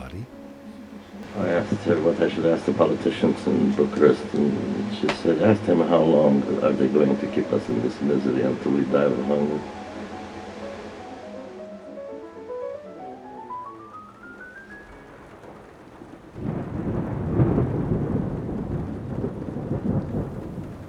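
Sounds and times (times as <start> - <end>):
deep rolling thunder: 0.0 - 20.8
heavy rain in a thunderstorm: 0.0 - 20.8
speech: 1.4 - 9.8
rising whistling tone: 9.6 - 16.0.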